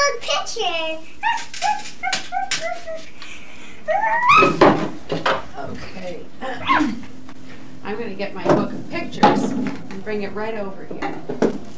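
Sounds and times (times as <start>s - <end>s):
speech: 0.1s - 1.4s, 7.9s - 11.7s
dog yipping and whimpering: 1.2s - 3.2s, 3.9s - 4.6s.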